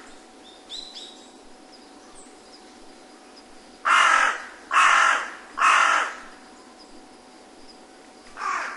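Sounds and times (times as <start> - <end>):
faint high bird chirps: 0.4 - 3.6
carrion crow giving loud rasping caws: 3.8 - 6.4, 8.4 - 8.7.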